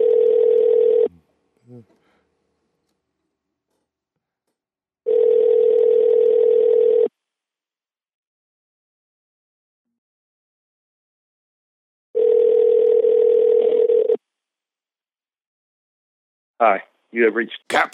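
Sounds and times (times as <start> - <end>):
phone ringback tones on unanswered outgoing call: 0.0 - 1.1, 5.1 - 7.1, 12.2 - 14.2
speech: 16.6 - 17.9.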